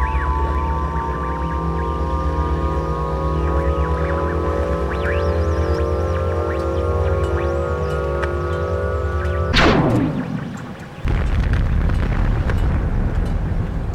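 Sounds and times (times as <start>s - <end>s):
steady tonal drone: 0.0s - 11.5s
dense continuous roaring rumble: 0.0s - 13.9s
cartoon explosion destroying a city: 9.5s - 13.1s.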